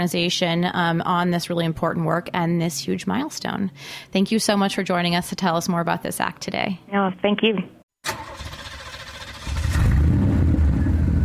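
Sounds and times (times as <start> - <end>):
speech: 0.0 - 7.8
car engine cranking and starting: 8.0 - 11.2.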